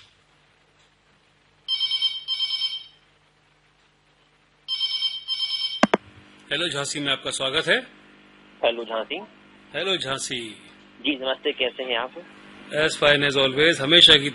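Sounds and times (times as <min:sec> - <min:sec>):
electronic telephone double ring as a caller is put through to a phone-in: 0:01.7 - 0:03.0, 0:04.7 - 0:06.0
speech: 0:06.6 - 0:08.0, 0:08.6 - 0:14.3.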